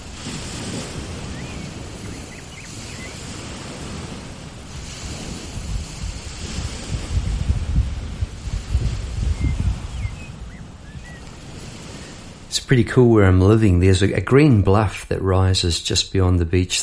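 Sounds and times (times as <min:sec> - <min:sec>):
ocean surf washing onto a beach below a green bluff: 0:00.0 - 0:16.8
faint blackbird calls: 0:01.1 - 0:03.4, 0:09.3 - 0:11.4
speech: 0:12.6 - 0:16.8.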